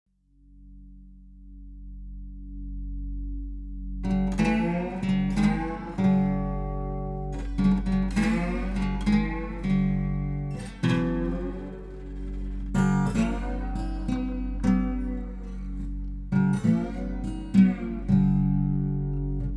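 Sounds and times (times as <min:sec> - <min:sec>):
country guitar: 0:04.0 - 0:19.5.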